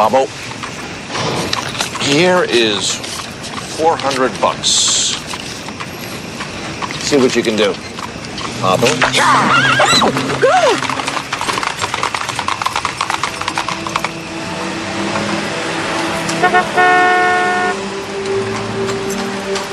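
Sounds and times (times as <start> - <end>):
speech: 0.0 - 0.5, 2.1 - 3.2, 3.8 - 4.9, 7.1 - 7.9, 8.6 - 11.0
horse hooves clopping while pulling a carriage: 0.0 - 16.9, 17.5 - 19.7
traffic noise: 0.0 - 19.7
horse pulling a carriage neighing: 7.6 - 14.0
car horn tooting: 16.3 - 17.8.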